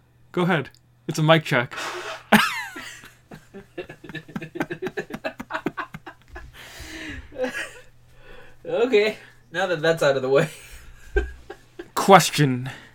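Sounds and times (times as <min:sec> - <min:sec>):
speech: 0:00.4 - 0:02.6, 0:08.8 - 0:10.6, 0:12.1 - 0:12.8
person blowing nose hard: 0:01.8 - 0:02.3
person laughing rhythmically: 0:02.2 - 0:07.9, 0:10.5 - 0:12.0.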